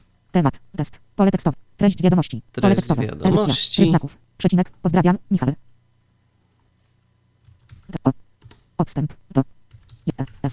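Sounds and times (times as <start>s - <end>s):
speech: 0.4s - 5.7s, 8.0s - 8.2s, 8.8s - 10.5s
computer keyboard key clicks while typing a message: 7.4s - 8.7s.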